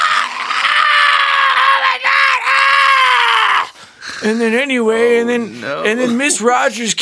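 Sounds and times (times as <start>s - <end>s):
voice imitating a man screaming in pain: 0.0s - 3.8s
speech: 4.2s - 6.9s.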